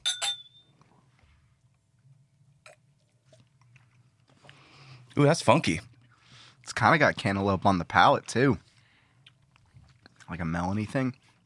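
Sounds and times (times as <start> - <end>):
glasses clinking in a toast: 0.0 - 0.7
low hum: 0.0 - 11.4
speech: 5.2 - 5.9, 6.7 - 8.6, 10.3 - 11.2.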